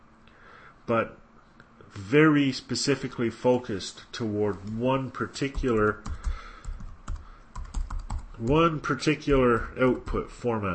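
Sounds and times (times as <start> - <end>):
speech: 0.9 - 1.2, 1.9 - 6.2, 8.4 - 10.7
typing a link on a computer keyboard into a chat window: 5.5 - 8.7.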